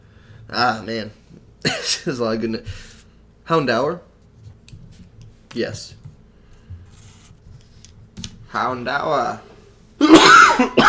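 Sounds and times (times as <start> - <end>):
speech: 0.5 - 2.9, 3.5 - 4.1, 5.5 - 6.0, 8.5 - 10.8
person with a partial cold coughing: 1.6 - 2.1, 10.0 - 10.8.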